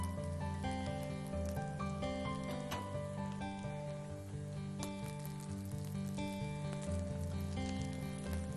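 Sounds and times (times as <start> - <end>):
food frying in melted butter: 0.0 - 8.5.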